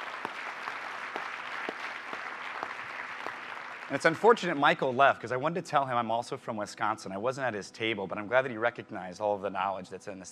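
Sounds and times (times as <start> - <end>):
audience round of applause: 0.0 - 4.8
speech: 3.9 - 10.3.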